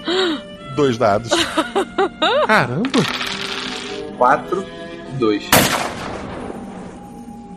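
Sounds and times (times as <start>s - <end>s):
speech: 0.1s - 3.2s, 4.2s - 5.8s
laughter: 1.3s - 2.8s
single loud gunshot sound effect with tail: 5.5s - 6.7s.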